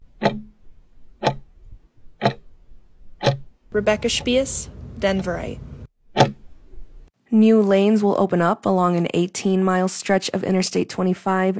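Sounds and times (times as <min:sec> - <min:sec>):
clock ticking: 0:00.0 - 0:00.5, 0:01.2 - 0:01.4, 0:02.2 - 0:02.4, 0:03.2 - 0:04.6
speech: 0:03.8 - 0:05.7, 0:07.3 - 0:11.5.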